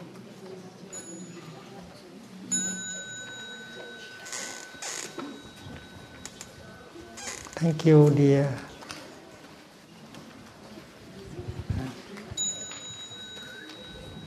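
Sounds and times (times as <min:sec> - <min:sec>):
quiet murmuring voices: 0:00.0 - 0:14.2
small bell rung at a Sangha gathering: 0:02.5 - 0:06.8, 0:12.4 - 0:14.2
speech: 0:07.6 - 0:08.7.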